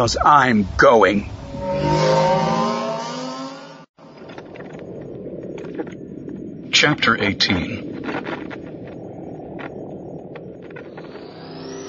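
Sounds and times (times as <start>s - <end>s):
speech: 0.0s - 2.1s, 6.8s - 7.9s
motorbike engine revving as throttle is twisted to pull away: 1.4s - 4.0s.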